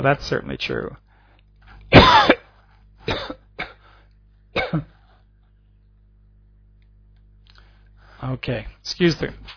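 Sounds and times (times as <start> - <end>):
speech: 0.0 - 1.0, 3.1 - 3.4, 4.5 - 5.0, 8.2 - 9.5
person coughing: 1.9 - 4.0, 4.6 - 5.1.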